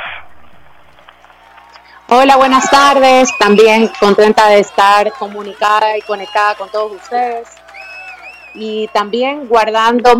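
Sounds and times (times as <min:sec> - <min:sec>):
applause: 0:01.0 - 0:10.1
speech: 0:02.1 - 0:07.6, 0:08.5 - 0:10.1.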